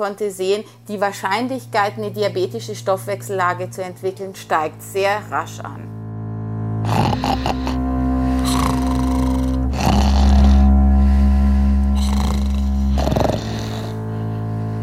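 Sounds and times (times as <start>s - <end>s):
speech: 0.0s - 6.0s, 7.2s - 7.7s
loud rasping snores: 6.8s - 14.4s.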